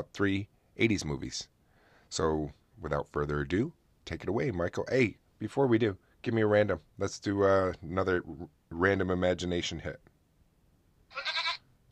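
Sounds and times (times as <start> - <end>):
speech: 0.0 - 10.1
goat bleating: 11.1 - 11.7.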